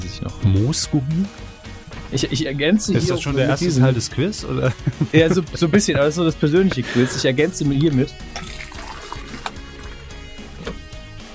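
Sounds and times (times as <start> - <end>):
speech: 0.2 - 1.5, 2.1 - 8.5
laughter: 2.8 - 7.8
tea poured from a 3-litre thermos flask into a cup: 8.3 - 10.0.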